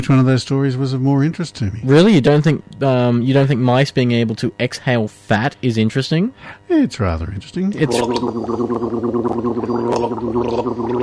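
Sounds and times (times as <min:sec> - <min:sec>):
speech: 0:00.0 - 0:11.0
gargling sound effect from a sound effects CD: 0:07.8 - 0:11.0.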